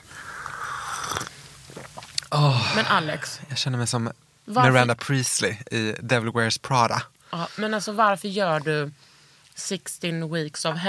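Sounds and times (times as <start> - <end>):
soft mouth clicks: 0.0 - 2.3
quiet swallow: 0.0 - 3.0
slurping hot black coffee: 0.2 - 2.3
speech: 2.3 - 10.8.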